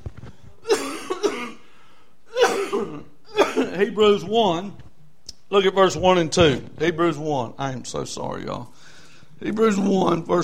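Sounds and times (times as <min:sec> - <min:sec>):
person coughing harshly: 0:00.6 - 0:01.7, 0:02.3 - 0:03.9
speech: 0:03.8 - 0:04.8, 0:05.5 - 0:10.4.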